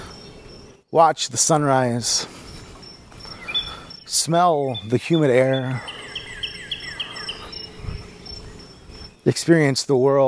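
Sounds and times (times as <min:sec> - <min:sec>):
birds chirping in the morning around sunrise: 0:00.0 - 0:10.2
soft outdoor background: 0:00.0 - 0:10.2
speech: 0:00.9 - 0:02.4, 0:04.1 - 0:06.0, 0:09.2 - 0:10.2
steady high insect drone: 0:02.1 - 0:04.5, 0:05.6 - 0:09.4.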